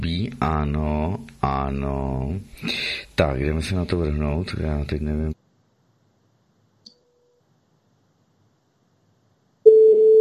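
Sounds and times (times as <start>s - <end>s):
speech: 0.1s - 5.4s
telephone ringing tone over the line on an outgoing call: 9.7s - 10.1s.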